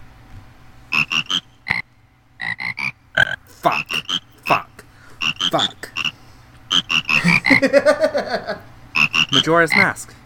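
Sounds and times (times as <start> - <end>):
video game music made from frog croaks: 0.9 - 7.7, 9.0 - 9.9
laughter: 3.5 - 4.6, 5.3 - 6.0, 6.7 - 9.7
speech: 3.6 - 4.6, 5.5 - 5.7, 7.6 - 8.0, 9.4 - 10.2.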